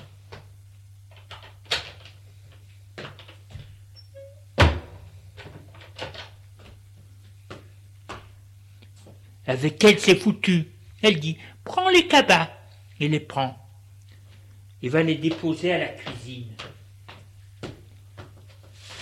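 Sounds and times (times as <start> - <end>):
front door thud: 4.6 - 5.0
speech: 9.5 - 13.6, 14.8 - 16.6.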